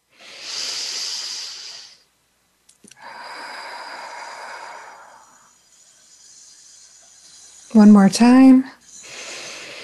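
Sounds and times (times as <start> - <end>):
deep meditative breathing: 0.0 - 2.1, 2.9 - 7.8, 8.8 - 9.8
speech: 7.7 - 8.8.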